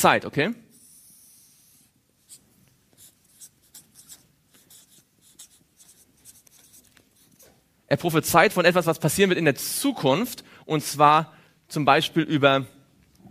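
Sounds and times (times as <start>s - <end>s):
speech: 0.0s - 0.6s, 7.9s - 12.8s
quiet hiss: 0.0s - 13.2s
pen strokes writing by hand: 0.8s - 7.5s.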